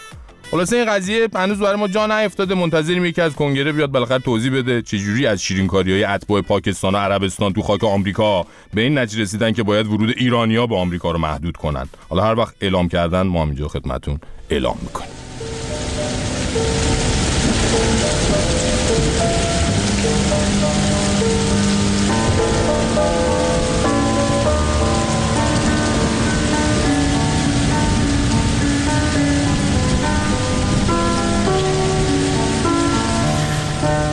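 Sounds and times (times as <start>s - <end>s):
speech: 0.5s - 15.3s, 16.5s - 16.9s
soft sustained musical notes: 14.8s - 34.1s
steady rain pattering on a hard surface: 15.1s - 34.1s.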